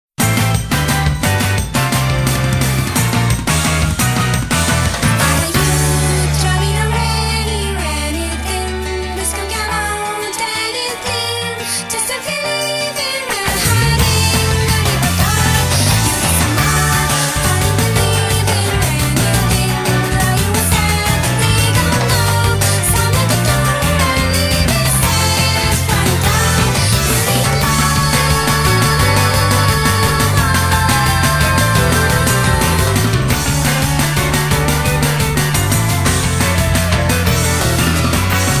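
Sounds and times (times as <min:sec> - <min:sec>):
guitar pop music: 0:00.2 - 0:38.5.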